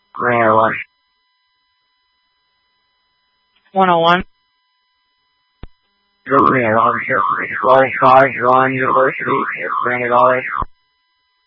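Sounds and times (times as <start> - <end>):
speech: 0.2 - 0.9, 3.8 - 4.3, 6.3 - 10.7
brief wavering tone burst: 6.3 - 10.7
loud electronic alarm warbling: 6.3 - 10.7.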